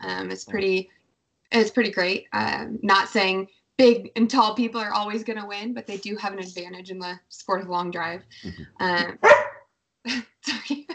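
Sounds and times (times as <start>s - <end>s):
speech: 0.0s - 9.4s, 10.0s - 10.9s
dog barking: 9.2s - 9.6s.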